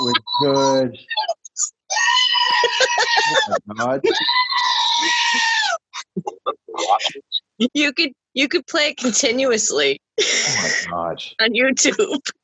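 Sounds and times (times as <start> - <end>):
goat screaming: 0.0 - 5.9
speech: 0.4 - 1.7, 3.2 - 5.5, 6.9 - 12.4
laughter: 2.5 - 4.4, 6.0 - 7.4.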